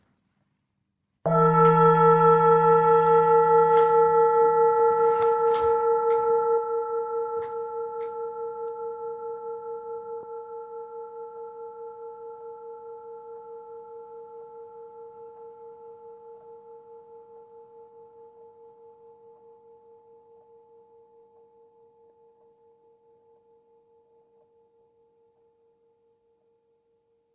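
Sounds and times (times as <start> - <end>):
singing bowl struck to close a meditation: 1.3 - 27.3.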